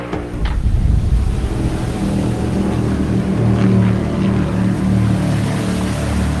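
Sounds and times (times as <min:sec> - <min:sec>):
faint wash of water: 0:00.2 - 0:06.3
outboard motor of a migrant boat droning: 0:00.3 - 0:06.3.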